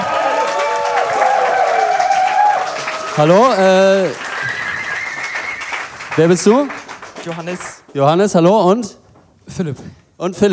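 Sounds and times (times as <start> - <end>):
cheering voices and whoops: 0.0 - 3.2, 4.2 - 5.8
crowd applauding game show contestants: 0.0 - 8.0
speech: 3.2 - 4.6, 6.2 - 10.5.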